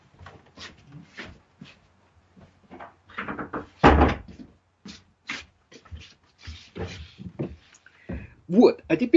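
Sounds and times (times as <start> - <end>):
door shutting with a solid thump: 3.3 - 4.3
speech: 8.5 - 9.1.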